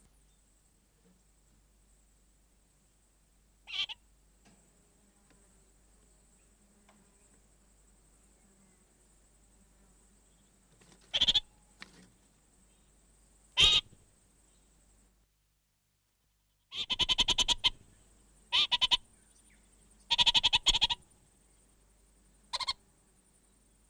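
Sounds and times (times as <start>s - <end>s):
faint steady high hiss: 0.0s - 23.8s
orange-fronted parakeet giving harsh rapid chattering bursts: 13.6s - 13.8s, 16.7s - 17.8s, 18.5s - 19.0s, 20.1s - 21.0s, 22.6s - 22.8s.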